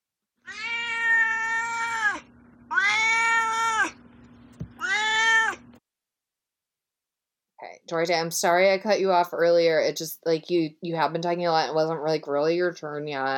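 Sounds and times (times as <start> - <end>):
cat meowing: 0.4 - 4.0, 4.7 - 5.7
speech: 7.9 - 13.3.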